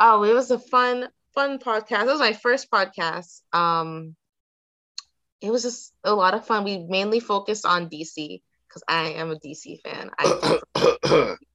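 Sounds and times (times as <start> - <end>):
speech: 0.0 - 4.2, 5.4 - 11.5
person coughing: 10.2 - 11.4.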